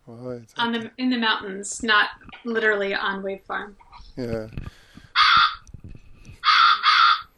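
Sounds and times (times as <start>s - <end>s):
speech: 0.4s - 4.8s
crows cawing: 5.2s - 5.6s, 6.4s - 7.3s.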